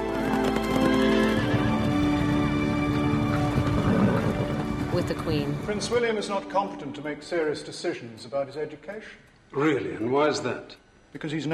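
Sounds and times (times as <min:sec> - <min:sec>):
horses whinnying and neighing: 0:00.0 - 0:06.0
hooves of two ridden horses clip-clopping: 0:00.0 - 0:06.2
speech: 0:05.0 - 0:11.5.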